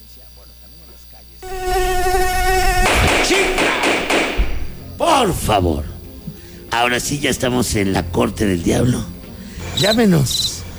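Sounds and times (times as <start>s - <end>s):
cricket buzzing: 1.4s - 4.9s
speech: 5.2s - 5.9s, 6.8s - 9.1s, 9.8s - 10.5s.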